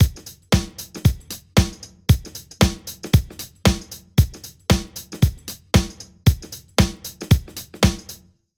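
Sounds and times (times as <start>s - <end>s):
drums: 0.0s - 8.3s.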